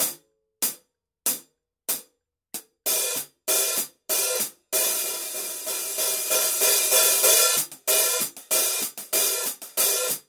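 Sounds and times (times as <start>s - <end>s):
heavy full hi-hat pattern on forged bronze alloy cymbals: 2.9s - 10.2s.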